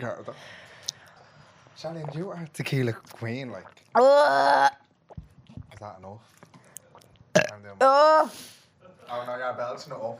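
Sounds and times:
speech: 0.0s - 0.7s, 1.8s - 4.8s, 5.8s - 6.5s, 7.5s - 10.1s
loud belch: 7.3s - 7.6s.

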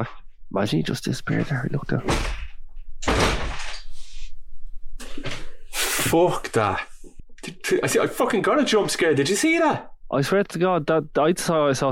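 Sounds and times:
speech: 0.0s - 2.4s, 6.1s - 11.9s
door swinging open: 2.0s - 3.9s.

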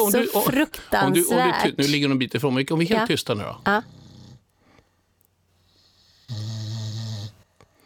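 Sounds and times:
speech: 0.0s - 4.0s
pet snoring: 3.6s - 4.5s, 5.7s - 7.5s.

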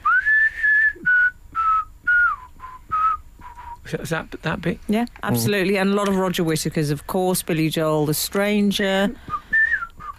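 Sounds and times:
whistled pop song melody: 0.0s - 3.8s, 9.3s - 10.1s
speech: 3.9s - 9.3s.

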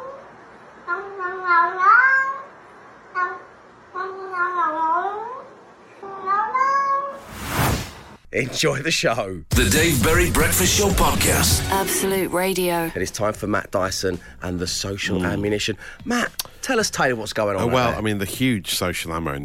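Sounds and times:
cat meowing in speech-like phrases: 0.9s - 2.5s, 3.2s - 5.5s, 6.1s - 7.3s
speech: 8.4s - 19.4s.

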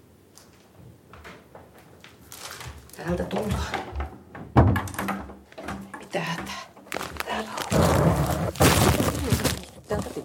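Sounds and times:
stack of books with a microphone toppling over in a mattress fort: 2.2s - 3.0s, 6.9s - 10.2s
speech: 3.0s - 3.9s, 6.2s - 6.7s.

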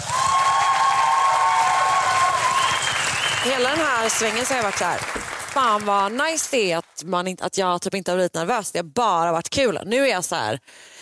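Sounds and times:
crowd applauding: 0.0s - 7.0s
speech: 3.4s - 11.0s.

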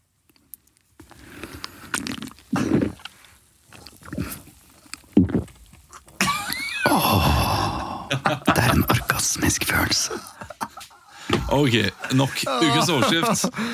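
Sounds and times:
soft mouth noises: 0.2s - 6.2s
slurping and gulping a foamy drink: 0.5s - 6.2s
laughter: 6.2s - 7.4s, 8.1s - 9.0s, 10.0s - 13.7s
speech: 8.3s - 10.4s, 11.5s - 13.7s.

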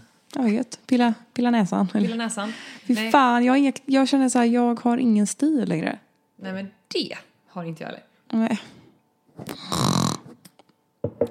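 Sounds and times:
speech: 0.4s - 8.8s
loud rasping snore-like snort: 9.5s - 10.4s.

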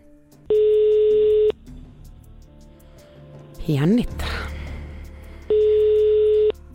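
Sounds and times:
ringback tones of an unanswered outgoing phone call: 0.5s - 1.6s, 5.5s - 6.6s
speech: 3.7s - 4.5s.

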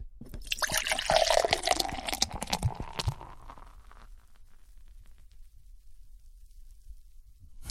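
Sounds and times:
beer being poured into a glass: 0.2s - 4.3s.

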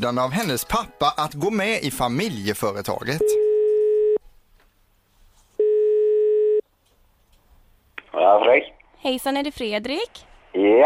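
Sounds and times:
speech: 0.0s - 3.4s, 8.2s - 10.8s
telephone ringing tone on an outgoing call: 3.2s - 4.2s, 5.6s - 6.6s.

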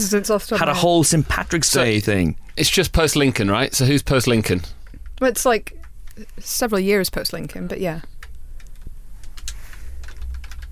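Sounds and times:
speech: 0.0s - 8.1s
typing on a computer keyboard during an online search: 8.2s - 10.7s.

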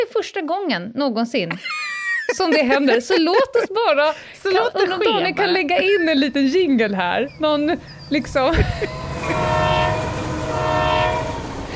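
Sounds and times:
speech: 0.0s - 9.5s
laughter: 1.5s - 6.9s, 8.3s - 9.7s
X2000 high-speed train rushing past: 5.3s - 11.7s
X2000 high-speed train horn blasts: 8.7s - 11.7s.

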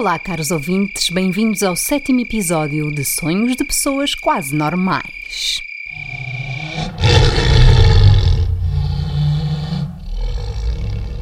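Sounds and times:
speech: 0.0s - 5.7s
lion roaring loudly and close: 5.9s - 11.2s.

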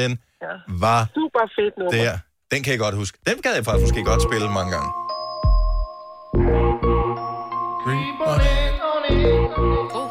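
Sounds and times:
speech: 0.0s - 5.0s
bright electronic mobile phone ringtone melody: 3.8s - 10.0s.

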